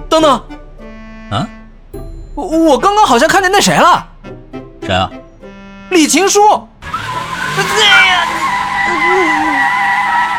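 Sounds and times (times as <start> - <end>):
speech: 0.2 - 0.6, 1.3 - 1.6, 2.4 - 4.1, 4.8 - 5.2, 5.9 - 6.7, 7.6 - 9.7
car tires skidding as a car brakes hard: 6.8 - 10.3.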